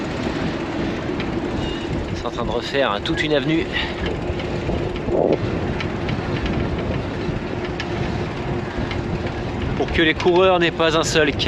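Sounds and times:
low tonal hum: 0:00.0 - 0:11.4
trains rumbling beside a railway station: 0:00.0 - 0:11.4
speech: 0:02.2 - 0:04.2, 0:05.1 - 0:05.8, 0:09.9 - 0:11.4.

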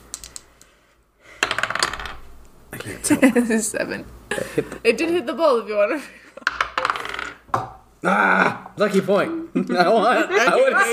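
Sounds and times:
rose gold dice tumbling and skittering across a tabletop: 0:01.4 - 0:02.2, 0:06.4 - 0:07.4
speech: 0:02.7 - 0:06.2, 0:08.0 - 0:10.9
laughter: 0:09.3 - 0:10.9.

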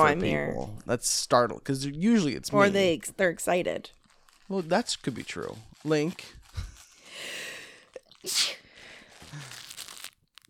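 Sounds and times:
speech: 0:00.0 - 0:07.4, 0:08.2 - 0:08.6
toy tearing: 0:03.9 - 0:10.4.

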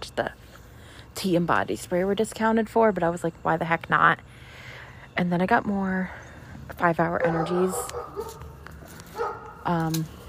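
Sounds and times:
speech: 0:00.2 - 0:00.4, 0:01.2 - 0:04.5, 0:05.2 - 0:08.4, 0:09.7 - 0:10.2
neighbouring dog barking: 0:07.2 - 0:09.7.

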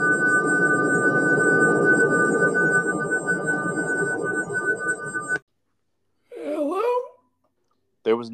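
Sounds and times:
piercing high-pitched ringing tone: 0:00.0 - 0:05.4.

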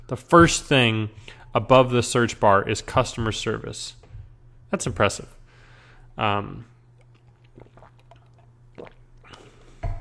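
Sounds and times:
speech: 0:00.1 - 0:04.0, 0:04.7 - 0:05.4, 0:06.2 - 0:06.7
person sipping water: 0:06.7 - 0:09.8
gulp: 0:06.9 - 0:09.9.

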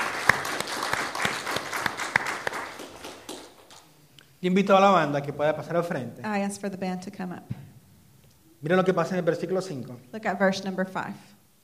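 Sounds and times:
church congregation applauding: 0:00.0 - 0:04.0
speech: 0:04.4 - 0:07.6, 0:08.6 - 0:11.3.

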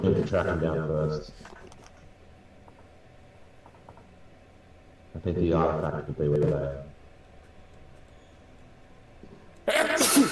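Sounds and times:
speech: 0:00.0 - 0:01.6, 0:05.2 - 0:06.9
sneeze: 0:09.7 - 0:10.3.

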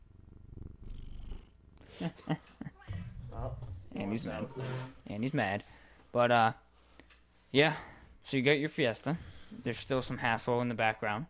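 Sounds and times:
cat purring: 0:00.0 - 0:01.9, 0:02.7 - 0:05.0
speech: 0:02.0 - 0:02.6, 0:03.4 - 0:06.6, 0:07.5 - 0:11.2.

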